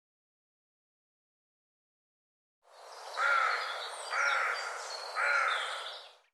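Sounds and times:
hoarse bird calls: 0:03.0 - 0:06.3.

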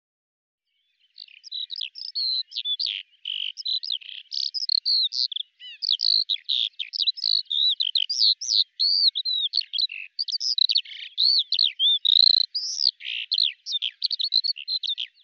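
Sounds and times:
bird song warble of high chirps and slurred whistles: 0:00.7 - 0:15.2.

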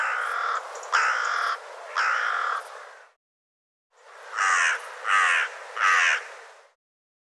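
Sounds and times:
bird giving harsh raspy caw-like calls: 0:00.0 - 0:03.2, 0:04.3 - 0:06.4.

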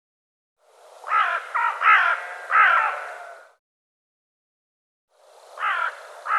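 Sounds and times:
bird giving harsh crow-like caws: 0:01.0 - 0:03.6, 0:05.6 - 0:06.3.

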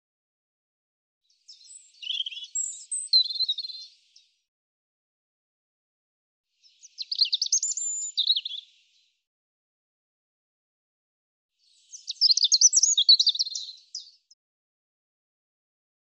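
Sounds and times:
European robin song: 0:01.3 - 0:04.4, 0:06.6 - 0:09.2, 0:11.6 - 0:14.4.

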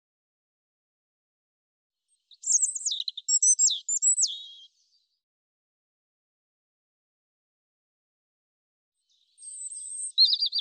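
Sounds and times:
European robin singing: 0:02.1 - 0:05.0, 0:09.1 - 0:10.5.

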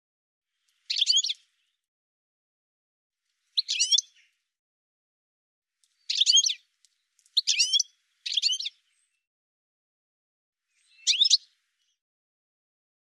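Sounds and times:
bird giving short harsh chirping calls: 0:00.7 - 0:01.8, 0:03.4 - 0:04.4, 0:05.8 - 0:09.2, 0:10.7 - 0:12.0.

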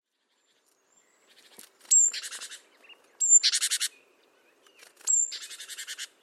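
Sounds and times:
great tit calling: 0:01.3 - 0:02.6, 0:03.2 - 0:04.1, 0:04.8 - 0:06.1.

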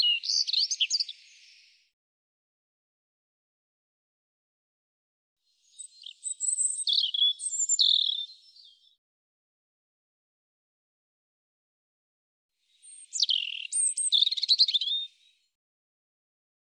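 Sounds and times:
European robin singing with whistles and twittering trills: 0:00.0 - 0:01.8, 0:05.6 - 0:09.0, 0:12.7 - 0:15.5.

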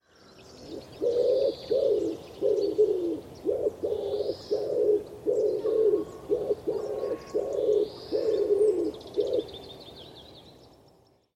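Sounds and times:
faint higher bird calls: 0:00.0 - 0:10.8
common wood pigeon cooing: 0:00.7 - 0:09.6.

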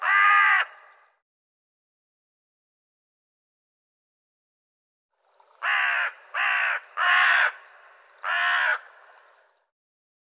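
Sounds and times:
bird calling with harsh grating caws: 0:00.0 - 0:01.0, 0:05.6 - 0:09.2.

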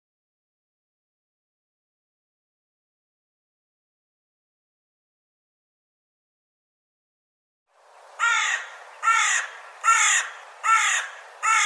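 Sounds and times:
bird giving harsh rough buzzy cawing calls: 0:08.2 - 0:11.6.

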